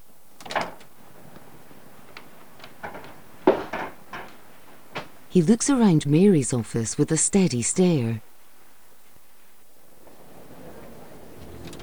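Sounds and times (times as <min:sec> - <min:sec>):
office door opening: 0:00.0 - 0:05.3, 0:09.9 - 0:11.8
speech: 0:05.3 - 0:08.3.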